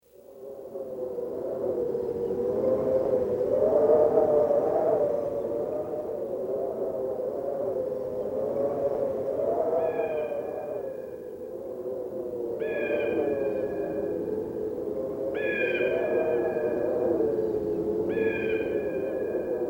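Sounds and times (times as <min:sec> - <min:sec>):
wind: 0:00.0 - 0:19.6.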